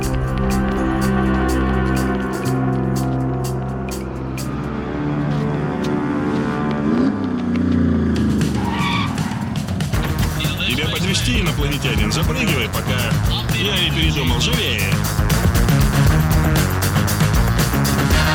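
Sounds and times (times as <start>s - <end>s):
car engine roaring as the car pulls away: 0.0s - 18.3s
tire squeal: 6.9s - 10.0s.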